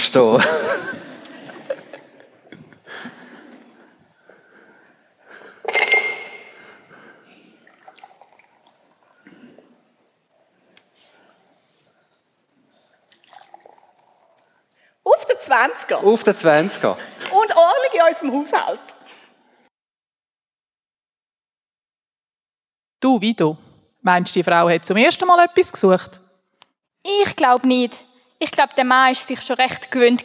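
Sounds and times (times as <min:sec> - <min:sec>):
speech: 0:00.1 - 0:00.7, 0:15.6 - 0:17.2, 0:18.0 - 0:19.0, 0:23.2 - 0:26.2, 0:27.0 - 0:30.2
laughter: 0:00.4 - 0:03.8
glasses clinking for a toast: 0:05.6 - 0:06.9, 0:16.4 - 0:17.7.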